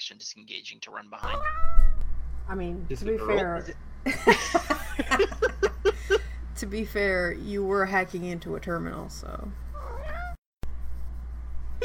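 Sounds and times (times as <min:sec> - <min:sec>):
speech: 0:00.1 - 0:09.6
cat meowing: 0:01.2 - 0:02.0, 0:09.8 - 0:10.4
laughter: 0:04.1 - 0:06.4.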